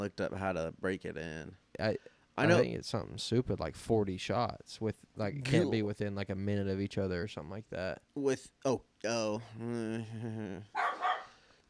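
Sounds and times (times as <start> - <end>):
speech: 0.0 - 10.9
dog barking: 10.8 - 11.4.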